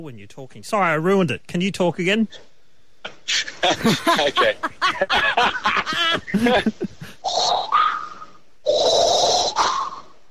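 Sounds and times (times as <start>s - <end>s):
speech: 0.0s - 7.8s
laughter: 3.4s - 7.2s
person vocalizing: 6.3s - 10.1s
voice imitating heavy mechanical respirator breathing: 7.1s - 10.1s.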